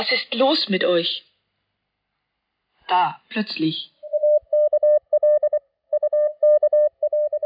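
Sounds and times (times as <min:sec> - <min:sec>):
speech: 0:00.0 - 0:01.3, 0:02.9 - 0:04.0
Morse code tapped out as a mid-pitched tone: 0:04.0 - 0:07.4.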